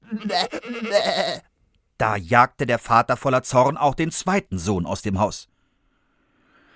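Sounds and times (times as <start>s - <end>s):
human voice imitating a goat's bleat: 0.0s - 1.5s
speech: 0.1s - 5.5s.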